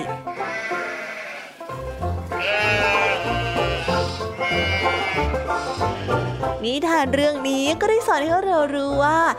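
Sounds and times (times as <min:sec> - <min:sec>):
small flock of sheep bleating: 0:00.2 - 0:01.7, 0:02.3 - 0:06.6
speech: 0:06.6 - 0:09.3.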